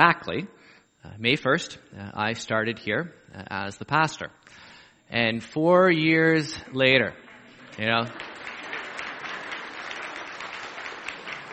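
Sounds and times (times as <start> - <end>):
speech: 0.0 - 7.2, 7.8 - 8.3
church congregation clapping: 6.6 - 11.5.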